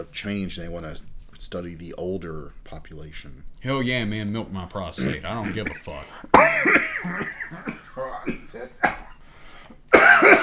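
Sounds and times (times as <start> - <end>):
speech: 0.0 - 9.0
wheezy laughter: 5.0 - 8.8
rough coughs and throat-clearing after laughing: 5.0 - 10.4.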